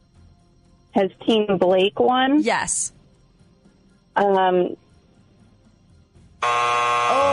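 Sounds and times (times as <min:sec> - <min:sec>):
speech: 0:01.0 - 0:03.0, 0:04.2 - 0:04.8, 0:06.4 - 0:07.3
quiz time-up buzzer: 0:06.4 - 0:07.3.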